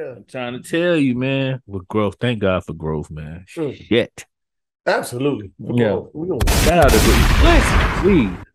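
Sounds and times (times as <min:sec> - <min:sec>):
speech: 0:00.0 - 0:08.5
gunshot blasts: 0:06.4 - 0:08.5.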